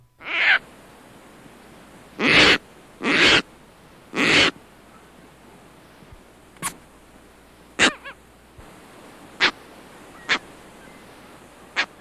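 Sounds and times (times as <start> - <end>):
adult Caspian tern raucous calls: 0.1 - 0.7, 2.2 - 5.2, 7.8 - 8.3, 9.4 - 11.9.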